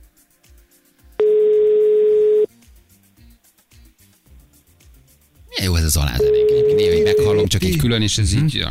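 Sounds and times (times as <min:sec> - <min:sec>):
electronic telephone ringback tone: 0:01.2 - 0:02.5, 0:06.2 - 0:07.4
speech: 0:05.9 - 0:08.6.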